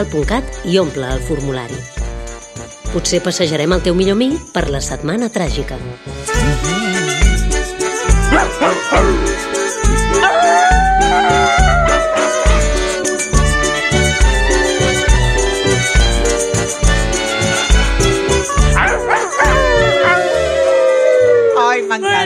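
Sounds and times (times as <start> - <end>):
speech: 0.0 - 1.9, 2.9 - 6.9, 8.4 - 9.5
loud steady rhythmic music: 0.0 - 21.5
audience howling like dogs: 8.3 - 9.4, 10.1 - 13.4, 18.7 - 21.9.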